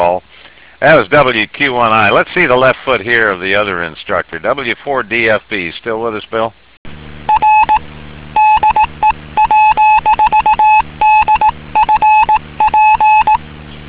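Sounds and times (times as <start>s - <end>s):
speech: 0.0s - 6.6s
Morse code call sign sent as a steady beeping tone: 7.3s - 7.8s, 8.4s - 13.4s.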